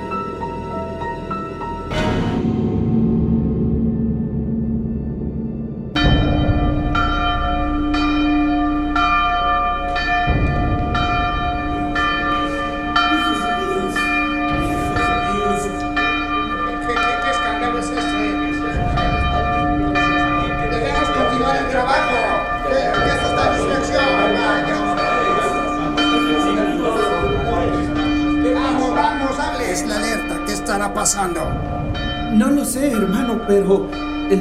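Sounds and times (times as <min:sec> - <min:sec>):
church bell tolling to summon friars: 0:00.0 - 0:34.3
speech: 0:33.5 - 0:34.3.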